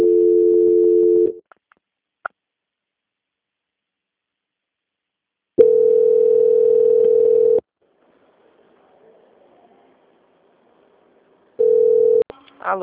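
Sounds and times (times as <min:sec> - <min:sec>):
telephone tone during a call transfer to a quality-control line: 0:00.0 - 0:01.4, 0:05.6 - 0:07.6, 0:11.6 - 0:12.2.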